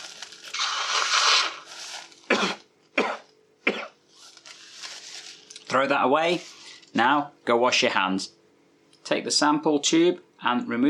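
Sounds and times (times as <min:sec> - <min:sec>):
nose blowing into a tissue: 0:00.5 - 0:02.6
person coughing: 0:02.3 - 0:04.0
speech: 0:05.7 - 0:08.4, 0:09.1 - 0:10.8.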